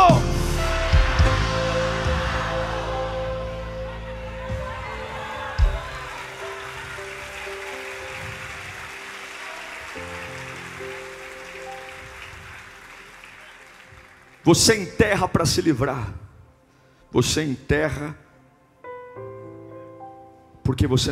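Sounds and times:
audience shouting loudly: 0.0 - 12.3
speech: 14.5 - 16.2, 17.1 - 18.2, 20.7 - 21.1.

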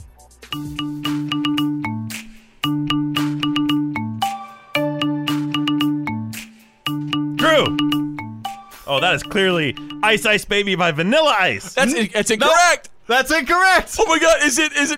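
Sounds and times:
speech: 0.5 - 1.0, 8.9 - 14.9
ringtone version of a popular song with punchy bass riff: 0.5 - 10.5.

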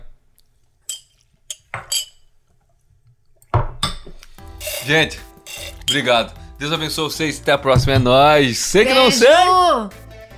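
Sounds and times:
louder glass clatter: 0.9 - 2.3, 4.6 - 6.0
glasses clinking in a toast after drinking shots: 0.9 - 2.4, 4.6 - 6.1
speech: 4.8 - 5.3, 5.9 - 10.0.

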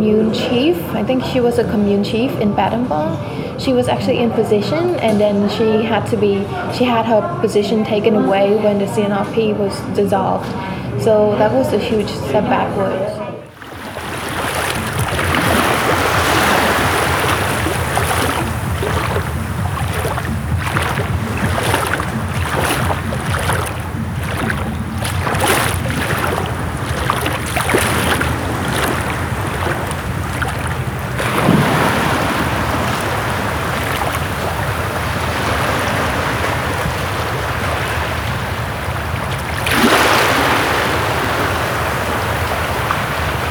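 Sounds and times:
speech: 0.0 - 13.2
ocean waves washing along an island shore: 13.5 - 43.4
sharper splashes of ocean waves: 13.5 - 43.4
gusty wind buffeting the microphone: 13.6 - 43.4.

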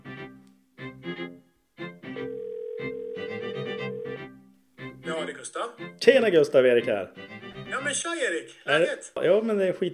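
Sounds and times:
telephone ringing tone of an outgoing call: 2.2 - 4.3
speech: 5.1 - 9.9.

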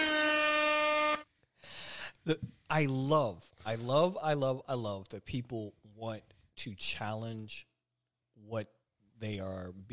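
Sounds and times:
air horn blast: 0.0 - 1.2
speech: 2.3 - 7.7, 8.4 - 9.9.

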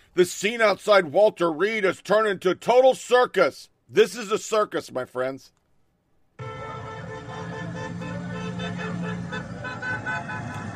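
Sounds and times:
speech: 0.2 - 5.6
car horns honking outside a hospital: 6.4 - 10.7
street noise: 6.4 - 10.7.

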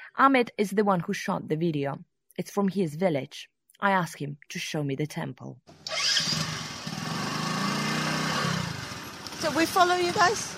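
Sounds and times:
speech: 0.2 - 6.3, 9.4 - 10.5
motorcycle engine running in a village in India: 5.7 - 10.5.

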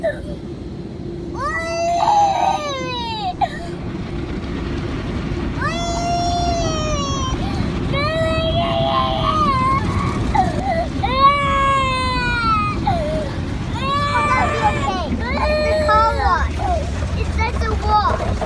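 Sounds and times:
low rumble and rushing spray of drive-through car wash machinery: 0.0 - 18.4
terrified toddler girl crying in high wavering wails: 1.4 - 3.8, 5.6 - 16.9.

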